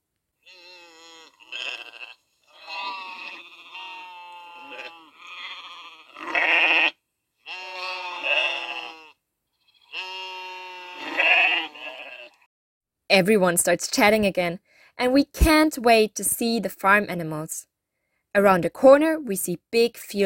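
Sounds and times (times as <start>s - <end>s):
several sheep bleating: 0.4s - 12.5s
speech: 13.1s - 17.7s, 18.3s - 20.2s.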